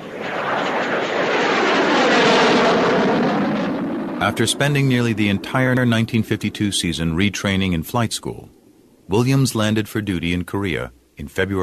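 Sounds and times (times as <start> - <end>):
jet aircraft engine roaring overhead: 0.0 - 7.6
speech: 4.3 - 11.6.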